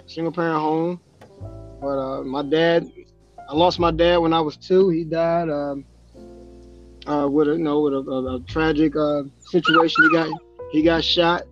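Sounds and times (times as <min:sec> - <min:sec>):
speech: 0:00.1 - 0:05.9, 0:07.0 - 0:11.5
pit bull dog whimpering and yipping: 0:09.5 - 0:10.4.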